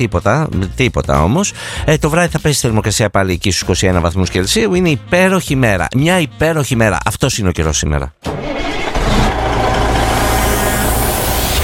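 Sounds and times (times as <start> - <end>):
speech: 0.0 - 8.8
car engine cranking and starting: 8.3 - 11.6.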